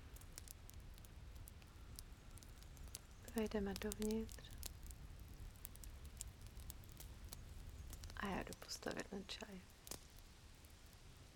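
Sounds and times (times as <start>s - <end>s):
low continuous rumble: 0.0s - 11.3s
quiet steady rain pattering: 0.0s - 11.3s
speech: 3.4s - 4.5s, 8.2s - 9.8s.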